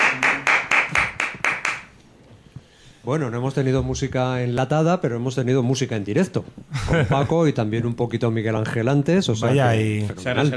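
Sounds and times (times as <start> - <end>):
hand claps after a live song performance: 0.0 - 2.0
speech: 3.1 - 10.5.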